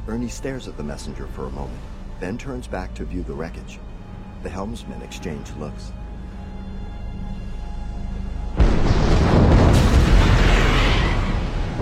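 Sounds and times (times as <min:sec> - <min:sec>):
speech: 0:00.0 - 0:06.0
tanker ship explosion: 0:08.6 - 0:11.8.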